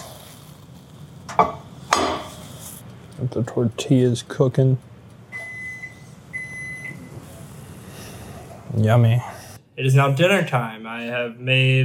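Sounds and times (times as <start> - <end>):
microwave oven low constant running hum: 0.0 - 10.5
speech: 3.2 - 4.9, 8.8 - 11.8
microwave oven electronic beeps: 5.3 - 7.2.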